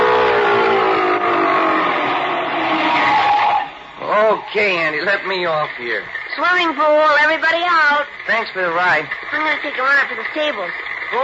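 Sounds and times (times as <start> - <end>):
old one-cylinder car engine roaring: 0.0 - 11.2
speech: 4.4 - 11.2.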